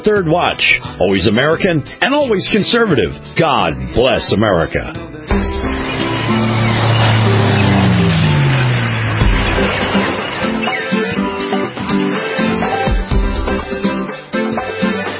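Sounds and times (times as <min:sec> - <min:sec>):
speech: 0:00.0 - 0:05.6
loud busy intro music for a radio beach and boating forecast: 0:00.1 - 0:15.1
low gliding tone sweeping downward: 0:05.3 - 0:11.4
sharp percussive hits: 0:05.3 - 0:12.2
steady sustained notes: 0:05.3 - 0:15.1.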